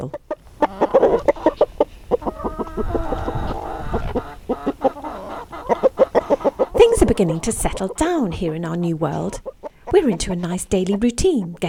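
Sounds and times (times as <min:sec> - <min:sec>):
speech: 0:00.0 - 0:00.2, 0:07.2 - 0:11.6
rescued chickens in a small flock in Norfolk clucking: 0:00.0 - 0:11.6.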